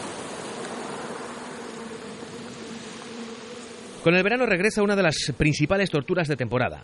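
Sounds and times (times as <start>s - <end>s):
mosquito buzzing: 0.2s - 4.8s
speech: 4.0s - 6.8s.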